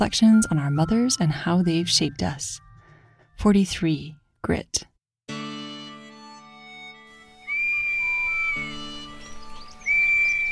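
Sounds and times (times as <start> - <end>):
speech: 0.0 - 2.6, 3.4 - 4.9
ringing tone: 0.0 - 3.2
shrill Acme police whistle blasts: 7.3 - 9.0.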